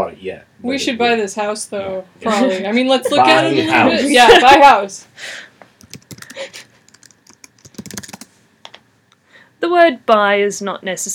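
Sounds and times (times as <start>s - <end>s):
speech: 0.0s - 5.5s, 9.6s - 11.1s
typing on a computer keyboard: 5.8s - 8.3s.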